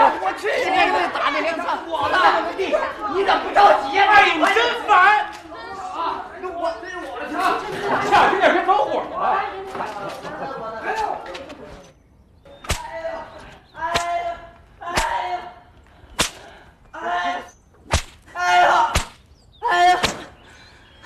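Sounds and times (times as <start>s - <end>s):
laughter: 0.0s - 11.8s
whip cracking: 12.6s - 13.0s, 13.8s - 15.4s, 16.2s - 16.6s, 17.8s - 20.3s.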